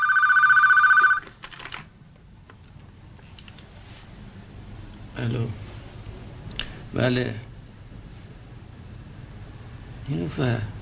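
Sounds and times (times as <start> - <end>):
telephone with a warbling electronic ring: 0.0 - 1.3
speech: 5.2 - 5.7, 6.9 - 7.5, 10.1 - 10.7.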